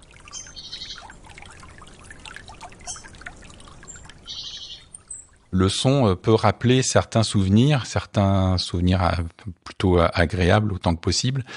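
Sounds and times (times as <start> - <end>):
water lapping among reeds in a wetland: 0.0 - 6.1
high bird chirps: 0.3 - 1.2, 2.8 - 3.2, 3.8 - 5.4
speech: 5.5 - 11.5.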